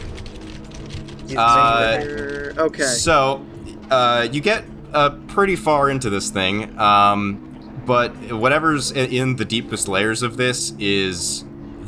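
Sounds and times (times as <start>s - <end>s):
computer keyboard typing: 0.0s - 2.6s
low hum: 0.0s - 11.8s
speech: 1.3s - 11.5s.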